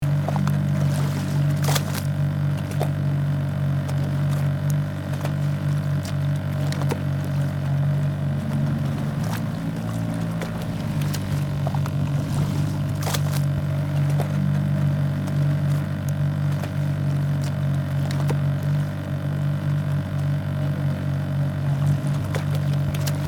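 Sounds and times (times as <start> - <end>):
gentle sea waves: 0.0 - 23.2
motorboat whirring at idle: 0.0 - 23.2.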